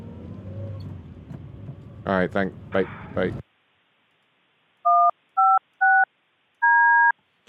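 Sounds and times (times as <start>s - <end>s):
speech: 2.0s - 3.4s
phone system keypad tones patching a call back: 4.9s - 7.1s.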